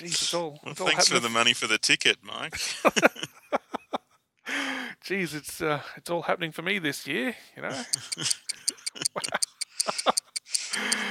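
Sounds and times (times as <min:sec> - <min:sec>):
speech: 0:00.0 - 0:03.4, 0:05.0 - 0:08.8
laughter: 0:02.5 - 0:04.1, 0:07.7 - 0:11.1
clock tick-tock: 0:07.7 - 0:11.1.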